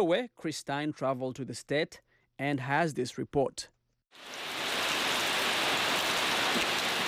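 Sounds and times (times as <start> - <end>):
speech: 0.0 - 4.6
steady rain falling on the ruins of a church in Michigan: 4.2 - 7.0.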